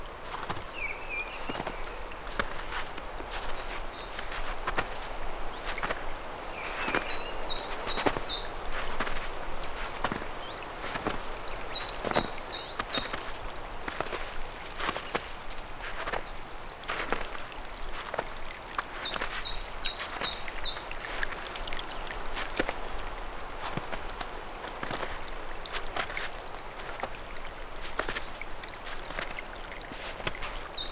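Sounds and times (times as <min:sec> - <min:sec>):
trickling, splashing snowmelt water in the high mountains: 0:00.0 - 0:30.9
birds chirping in the high mountains in spring: 0:03.2 - 0:15.5, 0:18.8 - 0:20.9, 0:30.5 - 0:30.9.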